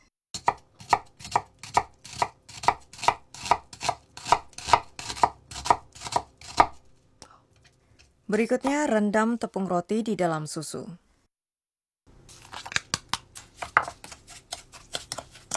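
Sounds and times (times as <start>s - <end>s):
knife finely chopping a halved thinly sliced onion: 0.4s - 6.9s, 12.3s - 15.5s
speech: 8.3s - 11.0s.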